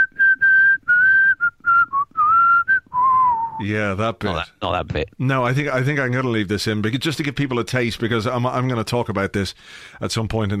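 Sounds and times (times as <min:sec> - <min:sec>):
person whistling a wavering tune: 0:00.0 - 0:03.6
speech: 0:03.6 - 0:10.5.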